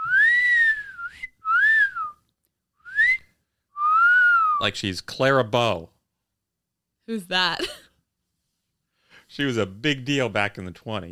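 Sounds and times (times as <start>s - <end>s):
human wolf whistles: 0.0s - 2.2s, 2.8s - 4.6s
speech: 4.6s - 6.0s, 7.1s - 7.6s, 9.4s - 11.0s.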